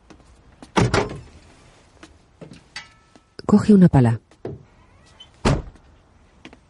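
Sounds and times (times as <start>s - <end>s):
speech: 3.5s - 4.2s
car trunk slamming shut: 5.4s - 5.8s.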